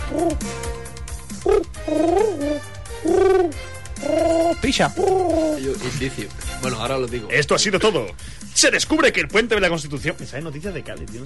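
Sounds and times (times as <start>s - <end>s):
pigeon cooing: 0.0s - 0.6s, 1.4s - 5.6s
speech: 0.1s - 0.7s, 1.4s - 2.7s, 4.7s - 11.2s.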